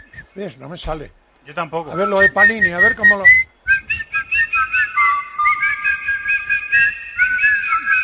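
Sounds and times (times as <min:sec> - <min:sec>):
speech: 0:00.4 - 0:03.4
person whistling an imitation of a goldfinch: 0:01.9 - 0:08.0.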